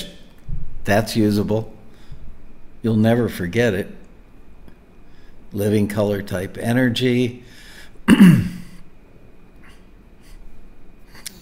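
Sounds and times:
speech: 0.9 - 1.8, 2.8 - 4.0, 5.5 - 8.5
throat clearing: 8.1 - 8.8.

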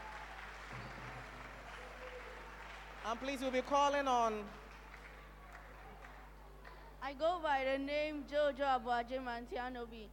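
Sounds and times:
audience clapping: 0.0 - 6.9
speech: 3.0 - 4.6, 7.0 - 10.1.

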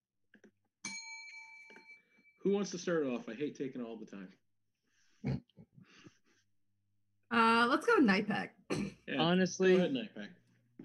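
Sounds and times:
bell struck once with a sharp bright ring: 0.8 - 2.8
speech: 2.4 - 4.4, 8.0 - 10.4.

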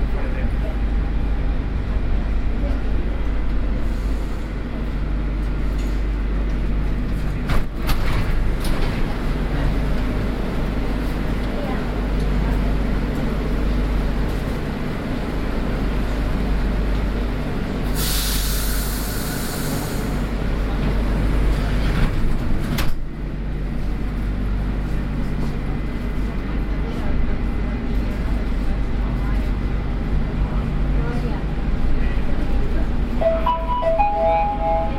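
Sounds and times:
deep steady rumble of a metro train under way: 0.0 - 34.9
short tonal chime in a metro train: 33.2 - 34.9.

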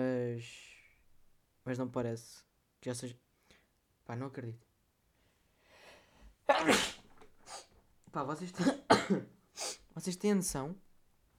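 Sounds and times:
speech: 1.6 - 3.2, 4.1 - 4.7, 6.5 - 7.0, 8.1 - 10.9
person sneezing: 6.5 - 7.7, 8.6 - 9.9.

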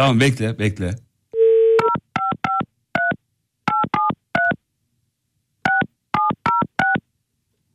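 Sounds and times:
speech: 0.0 - 1.0
telephone dial tone: 1.4 - 2.0
touch-tone phone keypad beeps: 1.4 - 4.6, 5.7 - 7.0.

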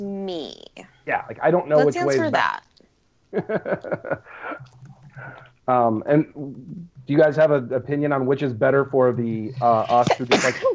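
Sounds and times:
speech: 0.0 - 2.7, 3.3 - 10.7
laughter: 1.2 - 2.4, 3.4 - 4.6
sneeze: 10.0 - 10.7.

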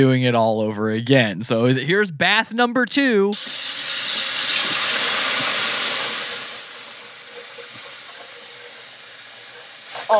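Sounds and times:
speech: 0.0 - 4.2
water pouring into a bowl of raw chicken: 3.4 - 9.9.

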